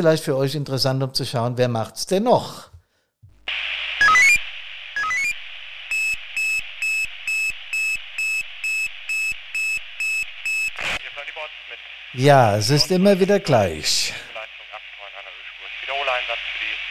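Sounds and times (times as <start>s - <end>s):
speech: 0.0s - 2.7s, 12.2s - 14.3s
radio static: 3.3s - 16.8s
fire brigade alarm pager beeping: 4.0s - 4.4s, 5.0s - 10.8s.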